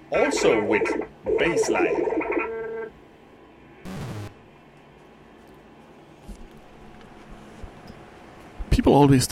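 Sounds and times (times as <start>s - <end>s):
speech: 0.1s - 2.1s, 9.0s - 9.3s
warbling synthesizer alarm heard from outside a window: 0.1s - 3.0s.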